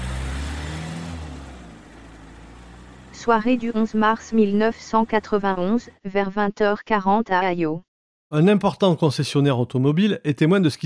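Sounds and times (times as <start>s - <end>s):
farmer's car engine rumbling and revving: 0.0s - 4.2s
speech: 3.2s - 10.8s.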